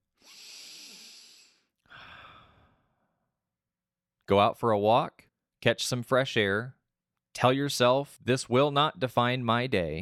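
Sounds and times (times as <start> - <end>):
deep breaths taken slowly: 0.2 - 3.2
speech: 4.3 - 6.8, 7.4 - 10.0.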